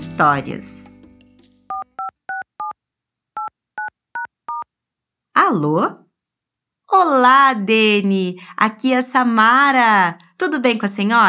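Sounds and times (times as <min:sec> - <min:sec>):
speech: 0:00.2 - 0:00.7, 0:05.5 - 0:06.0, 0:06.9 - 0:11.2
telephone keypad dialing tones: 0:01.7 - 0:02.8, 0:03.4 - 0:04.7.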